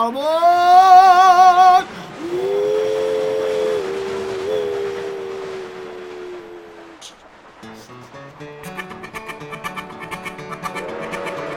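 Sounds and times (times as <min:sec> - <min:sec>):
faint hissing steam: 0:00.2 - 0:09.0
steam locomotive chugging climbing uphill: 0:00.5 - 0:11.5
steam train whistle blowing one long wavering note: 0:00.8 - 0:07.2, 0:10.6 - 0:11.5.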